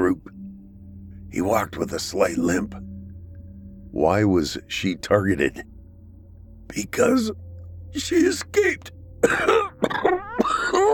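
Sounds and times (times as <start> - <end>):
speech: 1.3 - 2.9, 3.9 - 5.7, 6.7 - 10.2
man coughing harshly: 9.2 - 10.9.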